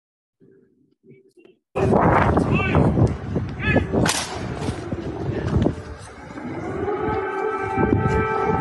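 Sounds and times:
noisy street bustle: 0:00.4 - 0:08.5
voices: 0:01.0 - 0:08.5
sharp cracks: 0:04.0 - 0:04.5
air raid siren wailing: 0:04.4 - 0:08.5.

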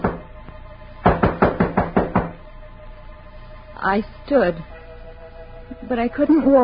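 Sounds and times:
firm knocks on a wooden door: 0:00.0 - 0:00.3, 0:01.0 - 0:02.4
speech: 0:03.8 - 0:04.8, 0:05.8 - 0:06.6.

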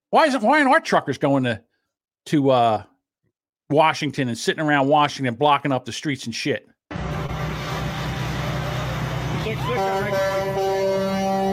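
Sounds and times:
speech: 0:00.1 - 0:02.9, 0:03.7 - 0:06.7
engine and traffic rumble: 0:06.9 - 0:11.5
vehicle horn honking: 0:09.6 - 0:11.5.

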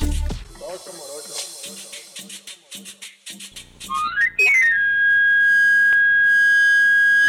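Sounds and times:
knife sharpener's wooden pan flute whistling glide and shrill note: 0:03.8 - 0:07.2.

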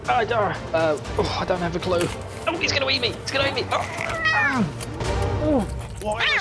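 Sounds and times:
speech: 0:00.1 - 0:06.3
cats meowing: 0:03.7 - 0:04.8, 0:06.0 - 0:06.3.

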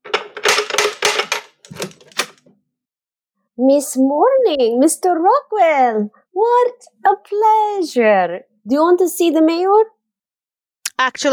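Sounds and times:
typewriter typing: 0:00.1 - 0:02.4
speech: 0:03.6 - 0:10.0, 0:11.0 - 0:11.3.

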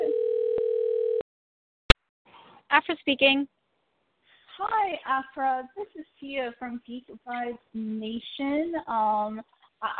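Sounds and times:
telephone dialing tone: 0:00.0 - 0:01.2
speech: 0:02.8 - 0:03.6, 0:04.6 - 0:09.9.

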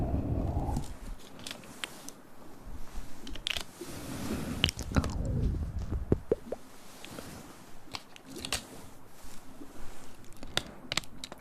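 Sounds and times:
hand movements with crunchy snaps and soft rustles: 0:00.5 - 0:11.3
mouth sounds with wet clicks: 0:04.8 - 0:06.7.

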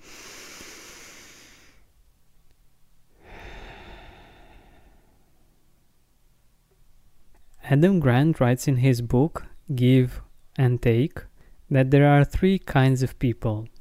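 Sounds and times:
deep breaths in and out: 0:00.0 - 0:01.9, 0:03.1 - 0:05.8
speech: 0:07.7 - 0:13.7.

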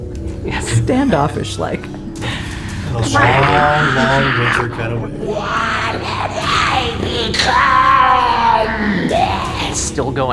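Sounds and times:
speech: 0:00.9 - 0:02.0, 0:02.9 - 0:06.4, 0:07.1 - 0:10.3
creature screaming in wavering shrieks: 0:03.0 - 0:09.9.

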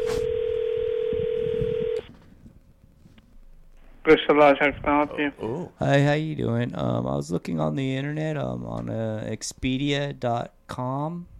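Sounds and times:
phone line hiss: 0:00.0 - 0:02.1
steady telephone tone: 0:00.0 - 0:02.1
voice talking over a phone line: 0:04.1 - 0:05.6
speech: 0:04.1 - 0:11.3.

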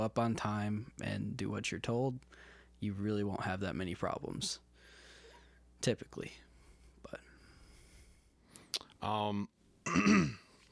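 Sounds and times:
speech: 0:00.0 - 0:04.6, 0:05.8 - 0:07.3, 0:09.0 - 0:10.4
throat clearing: 0:09.9 - 0:10.5.

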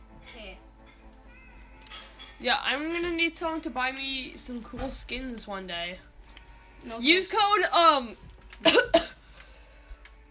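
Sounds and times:
speech: 0:02.4 - 0:06.1, 0:06.8 - 0:08.9
sick person coughing harshly: 0:08.6 - 0:09.2.

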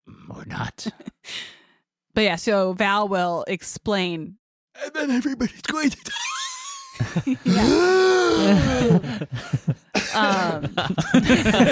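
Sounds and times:
speech: 0:00.6 - 0:01.6, 0:02.2 - 0:06.4, 0:07.0 - 0:11.7
laughter: 0:04.8 - 0:11.7
person coughing: 0:10.0 - 0:10.6.

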